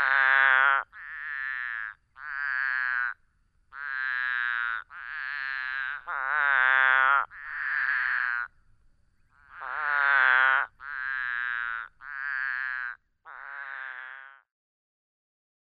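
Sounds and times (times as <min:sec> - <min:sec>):
Couch's spadefoot giving bleating lamb-like calls: 0:00.0 - 0:08.5, 0:09.3 - 0:14.5.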